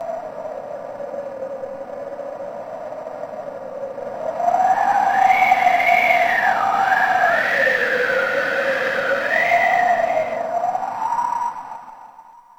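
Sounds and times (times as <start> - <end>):
sandstorm wind: 2.2 - 11.8.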